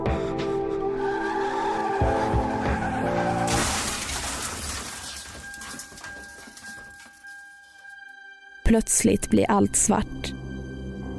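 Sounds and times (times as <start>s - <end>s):
Mini Cooper tires squealing while skidding on an icy road: 1.0s - 5.4s
speech: 8.7s - 10.4s.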